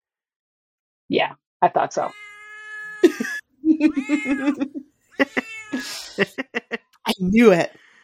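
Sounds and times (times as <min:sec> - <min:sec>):
speech: 0:01.1 - 0:02.2, 0:03.0 - 0:07.8
cat meowing: 0:02.1 - 0:06.0
laughter: 0:03.0 - 0:07.1.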